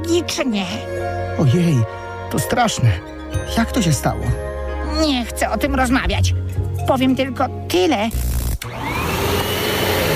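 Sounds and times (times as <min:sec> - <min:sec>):
speech: 0:00.1 - 0:08.3
large vacuum cleaner running: 0:08.6 - 0:10.1.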